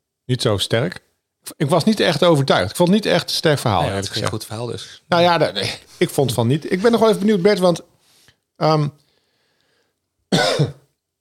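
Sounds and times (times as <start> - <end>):
speech: 0.3 - 7.9, 8.6 - 9.0, 10.3 - 10.8
person coughing with a rough throaty burst: 10.3 - 10.9.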